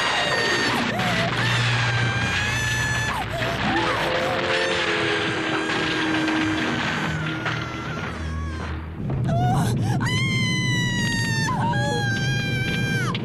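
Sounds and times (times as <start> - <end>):
thudding crashes: 0.0 - 10.1
heavy rumbling: 0.0 - 13.2
woman screaming: 0.0 - 13.2.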